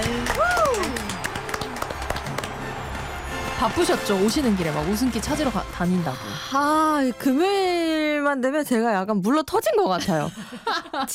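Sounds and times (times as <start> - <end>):
studio audience applauding: 0.0 - 6.3
speech: 3.6 - 11.1
laughter: 10.0 - 11.1.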